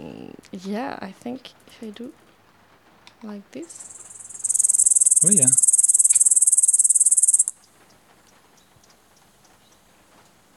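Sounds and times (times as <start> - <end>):
speech: 0.4 - 2.2, 3.2 - 4.0, 5.2 - 5.6
grasshopper song played back through a device in a field: 3.7 - 7.6.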